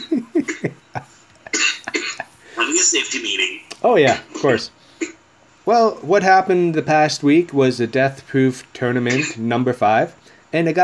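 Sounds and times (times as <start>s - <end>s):
person coughing: 0.4s - 0.8s, 1.5s - 2.4s, 4.1s - 5.2s
speech: 2.9s - 4.8s, 5.6s - 10.8s.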